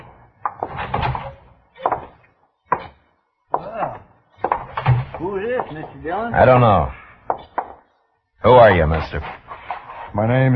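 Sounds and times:
jail door creaking: 0:00.0 - 0:02.3, 0:04.0 - 0:05.9
speech: 0:05.3 - 0:07.4, 0:08.4 - 0:09.4, 0:10.1 - 0:10.5.

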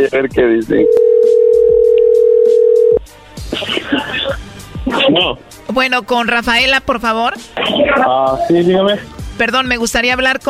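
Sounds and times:
speech: 0:00.0 - 0:01.1, 0:04.9 - 0:10.4
steady telephone line tone as a call connects: 0:00.8 - 0:03.0.

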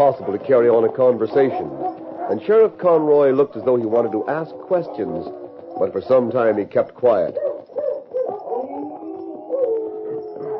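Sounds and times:
speech: 0:00.0 - 0:07.4
several dogs howling and whining at a cabin in the woods: 0:00.0 - 0:10.5.

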